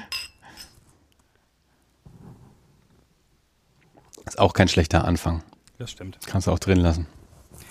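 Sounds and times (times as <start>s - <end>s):
glasses clinking in a toast in a bookshop: 0.0s - 0.8s
speech: 4.4s - 7.2s.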